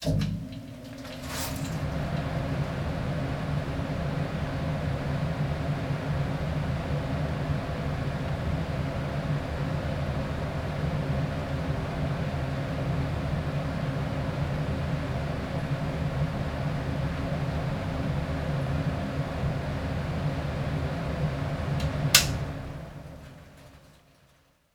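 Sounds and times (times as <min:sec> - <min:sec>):
air conditioner running: 0:00.0 - 0:24.7.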